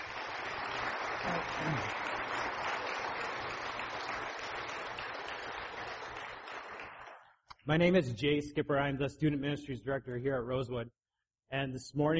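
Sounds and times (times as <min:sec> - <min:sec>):
audience applauding: 0:00.0 - 0:07.4
speech: 0:07.7 - 0:12.1.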